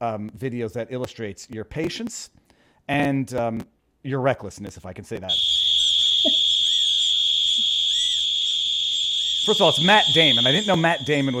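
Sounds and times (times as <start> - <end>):
speech: 0.0 - 5.6, 9.5 - 11.3
personal emergency alarm buzzer blaring a high-pitched tone: 5.3 - 11.3.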